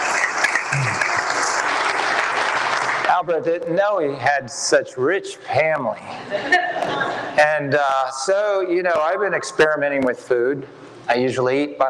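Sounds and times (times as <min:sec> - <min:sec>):
audience applauding: 0:00.0 - 0:03.4
speech: 0:03.2 - 0:11.8
laughter: 0:06.0 - 0:07.4.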